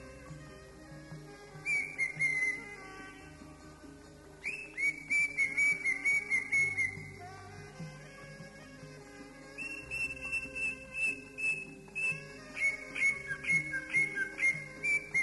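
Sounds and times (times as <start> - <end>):
Oriental magpie-robin singing high whistled phrases: 1.6 - 2.8, 4.4 - 7.2, 9.6 - 15.2.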